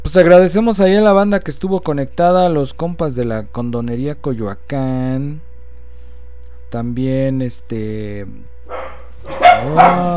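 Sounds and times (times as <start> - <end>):
low steady hum: 0.0 - 10.1
speech: 0.1 - 5.5, 6.7 - 10.1
dogs barking: 8.7 - 10.1.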